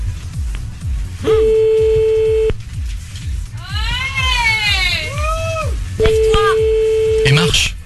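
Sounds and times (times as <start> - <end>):
continuous low rhythmic thumping: 0.0 - 7.4
telephone ringing tone from a called phone number: 1.2 - 2.5, 6.0 - 7.5.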